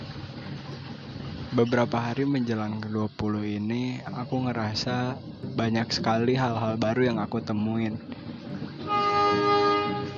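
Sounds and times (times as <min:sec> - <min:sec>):
train rumbling by: 0:00.0 - 0:10.1
speech: 0:01.5 - 0:08.2
train horn blaring a sustained steady chord: 0:08.8 - 0:10.1.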